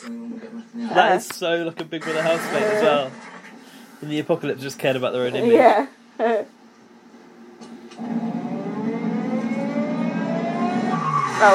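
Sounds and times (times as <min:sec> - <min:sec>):
speech: 0:00.0 - 0:03.3, 0:04.0 - 0:06.5
police car siren wailing: 0:08.0 - 0:11.5.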